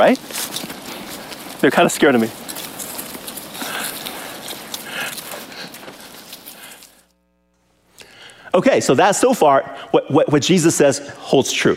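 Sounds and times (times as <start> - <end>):
speech: 0.0 - 0.4, 1.6 - 2.4, 8.6 - 11.7
flock of sheep scrambling away with hooves drumming on ground: 0.0 - 7.0.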